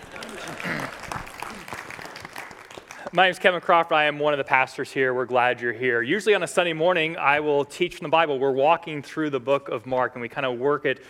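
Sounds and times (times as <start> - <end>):
audience applauding: 0.0 - 3.4
speech: 3.1 - 11.0.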